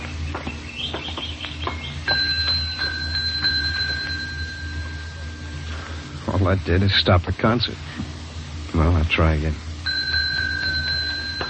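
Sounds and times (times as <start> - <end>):
quick bird-like chirps: 0.0 - 2.2
desk bell ding: 2.1 - 6.0, 9.9 - 11.4
speech: 6.4 - 8.1, 8.8 - 9.6.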